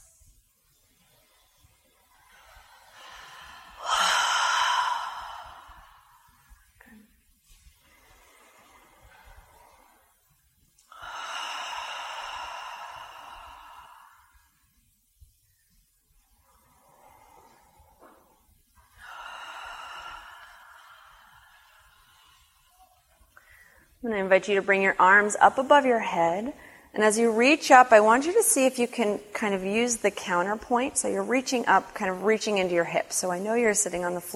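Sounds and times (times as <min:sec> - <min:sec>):
deep audible breaths during a grounding movement exercise: 0:01.1 - 0:06.9, 0:07.6 - 0:14.7, 0:16.3 - 0:24.0
speech: 0:24.0 - 0:34.3.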